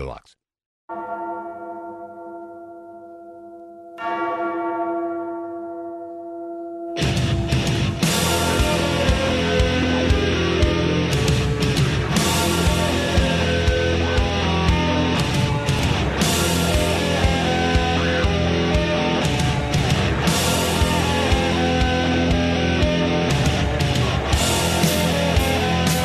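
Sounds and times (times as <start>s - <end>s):
speech: 0.0s - 1.2s
church bell tolling: 0.9s - 26.0s
loud dense rock music with heavy drums and distorted guitars: 7.0s - 26.0s.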